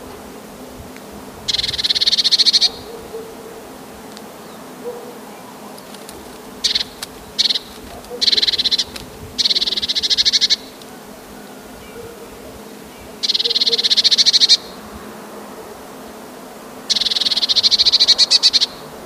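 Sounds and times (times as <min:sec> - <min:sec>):
Eurasian blue tit alarm call: 0:01.5 - 0:03.0, 0:06.6 - 0:10.8, 0:13.1 - 0:14.8, 0:16.9 - 0:18.8.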